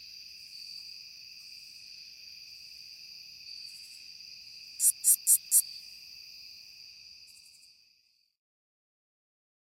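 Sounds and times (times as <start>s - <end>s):
constant high insect droning: 0.0s - 8.4s
curve-tailed bush katydid singing: 4.8s - 5.6s.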